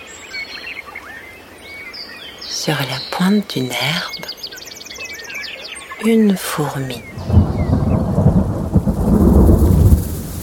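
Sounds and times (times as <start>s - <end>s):
speech: 2.5s - 4.4s, 6.0s - 7.4s
heavy summer rain downpour: 6.1s - 10.4s
deep rolling rumble of thunder: 7.0s - 10.4s.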